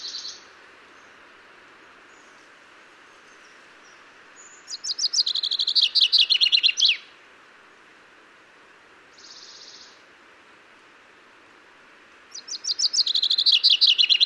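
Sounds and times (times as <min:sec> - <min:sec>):
Common chaffinch song, Fringilla coelebs: 0:00.0 - 0:07.2, 0:09.1 - 0:10.1, 0:12.2 - 0:14.2.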